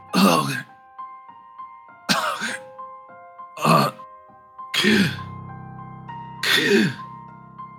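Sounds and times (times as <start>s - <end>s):
human voice imitating a dying man dribbling and gasping for breath: 0.1s - 0.7s, 3.6s - 4.0s, 4.8s - 5.3s, 6.4s - 7.1s.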